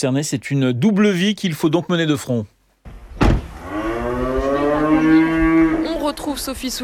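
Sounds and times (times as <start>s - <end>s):
speech: 0.0s - 2.5s, 6.2s - 6.8s
brief thump: 2.9s - 3.6s
cow on a farm mooing in a long low call: 3.6s - 6.0s
faint farmyard noise: 3.9s - 6.3s.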